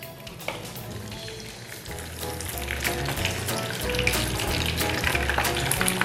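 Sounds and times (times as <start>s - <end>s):
tofu frying in hot oil: 0.0s - 6.0s.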